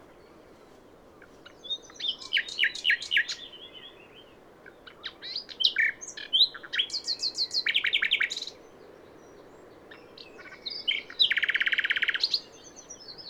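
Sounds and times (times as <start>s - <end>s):
common nightingale Luscinia megarhynchos singing: 1.5s - 4.2s, 4.9s - 8.6s, 9.9s - 13.2s.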